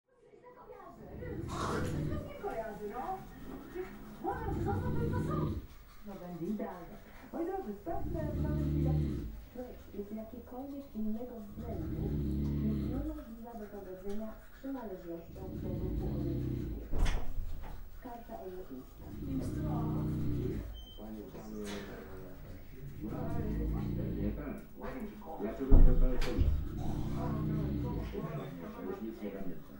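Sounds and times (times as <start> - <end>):
television: 0.0 - 29.7
snoring: 1.0 - 2.7, 3.3 - 5.8, 7.8 - 10.0, 11.4 - 13.3, 15.2 - 17.7, 18.8 - 24.6, 25.6 - 29.6.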